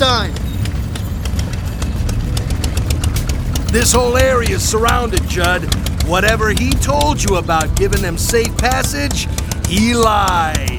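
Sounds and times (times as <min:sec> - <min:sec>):
irregular ticking clatter: 0:00.0 - 0:10.7
motorcycle engines approaching: 0:00.0 - 0:10.7
speech: 0:03.7 - 0:10.7.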